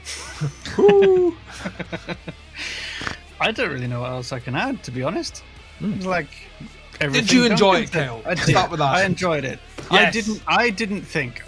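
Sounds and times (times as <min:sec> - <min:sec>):
laughter: 0:00.1 - 0:03.2, 0:07.2 - 0:09.3, 0:10.0 - 0:10.5
speech: 0:00.4 - 0:02.4, 0:03.4 - 0:11.4
high-pitched owl-like hoot: 0:00.7 - 0:01.5.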